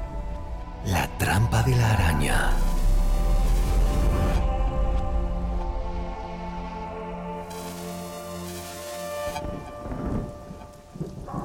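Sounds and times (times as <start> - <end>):
heavy rain at night on a poor cemetery outside a city: 0.4 - 11.4
speech: 1.3 - 2.7
sustained tonal drone: 2.2 - 9.8.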